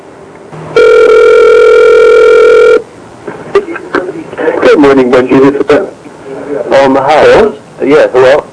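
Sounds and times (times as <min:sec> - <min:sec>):
telephone ringing over the line as a call is transferred: 0:00.7 - 0:02.8
speech: 0:04.8 - 0:06.0, 0:06.8 - 0:08.4.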